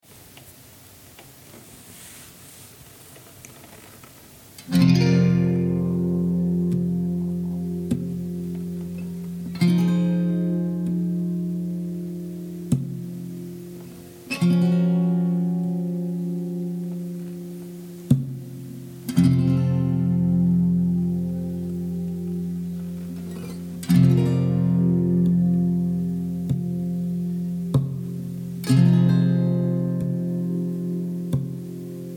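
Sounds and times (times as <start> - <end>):
guitar chords: 4.6 - 32.1.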